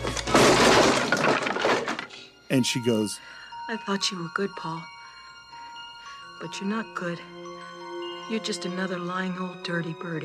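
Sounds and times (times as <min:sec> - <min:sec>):
object smashed against a wall, glass shattering: 0:00.0 - 0:02.2
speech: 0:02.5 - 0:04.9, 0:06.4 - 0:07.4, 0:08.3 - 0:10.2.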